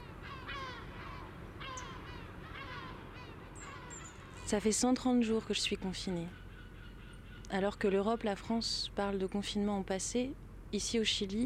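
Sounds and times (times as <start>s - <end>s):
seagulls calling over a harbour: 0.0s - 4.9s, 6.0s - 8.5s
speech: 4.5s - 6.4s, 7.5s - 11.4s.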